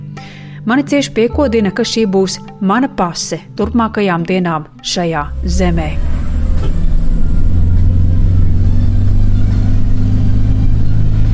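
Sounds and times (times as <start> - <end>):
speech: 0.6 - 6.8
car engine rumbling while speeding along a road in Syria: 5.1 - 11.3.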